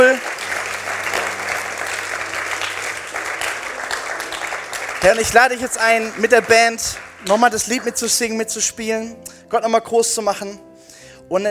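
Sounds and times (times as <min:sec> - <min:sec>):
speech: 0:00.0 - 0:00.4, 0:05.0 - 0:10.7, 0:11.3 - 0:11.4
audience applause at a church service: 0:00.0 - 0:08.3.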